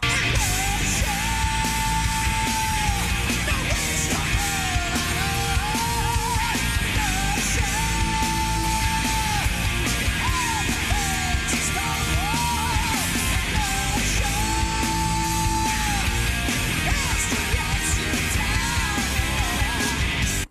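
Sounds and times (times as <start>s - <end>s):
harsh shouted vocals: 0.0s - 20.5s
heavy metal with distorted guitars and pounding drums: 0.0s - 20.5s.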